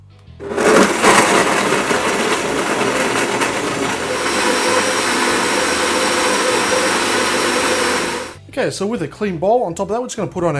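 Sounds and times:
blender on high grinding soaked almonds with water: 0.4 - 8.4
speech: 8.6 - 10.5.

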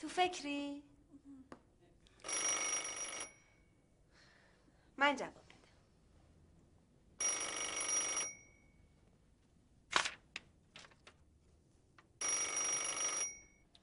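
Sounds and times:
speech: 0.0 - 0.9, 5.0 - 5.4
telephone bell ringing: 2.2 - 3.8, 7.2 - 8.8, 12.2 - 13.7.

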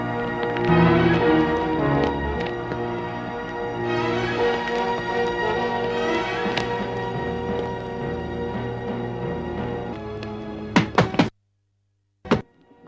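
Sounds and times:
dramatic music: 0.0 - 10.9
door being battered and broken down: 10.8 - 11.3.

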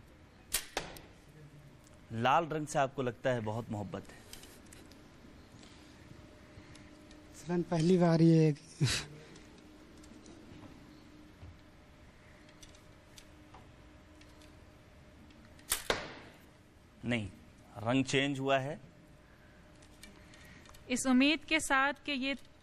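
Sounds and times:
low ambient hum: 0.0 - 22.6
arrows striking a target with sharp thwacks: 0.5 - 1.1, 15.6 - 16.4
speech: 2.1 - 4.2, 7.5 - 9.1, 17.1 - 18.9, 20.9 - 22.5.

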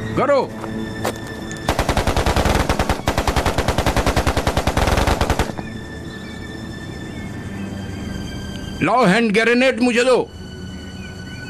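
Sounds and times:
speech: 0.2 - 1.1, 8.8 - 10.4
machine-gun fire during a firefight: 1.7 - 5.8.

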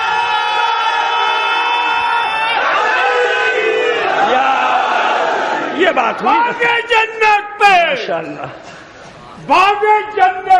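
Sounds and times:
large crowd shouting a religious slogan in unison: 0.2 - 5.8
speech: 6.0 - 10.5.

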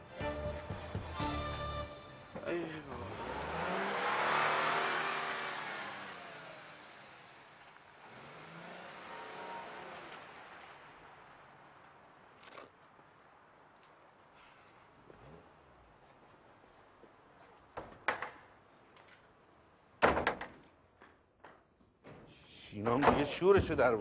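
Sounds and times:
car pulling away with whoosh of tyres and motor: 0.2 - 12.9
car engine revving: 2.4 - 11.7
speech: 22.7 - 24.0.

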